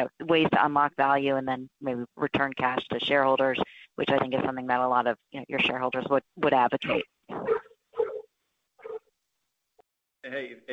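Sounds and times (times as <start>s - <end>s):
speech: 0.0s - 7.6s, 10.2s - 10.7s
dog barking during a business conference call: 7.4s - 8.2s, 8.8s - 9.0s.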